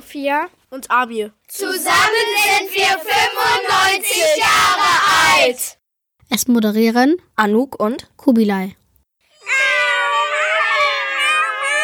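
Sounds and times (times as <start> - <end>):
speech: 0.1 - 8.8
cats meowing: 9.4 - 11.8.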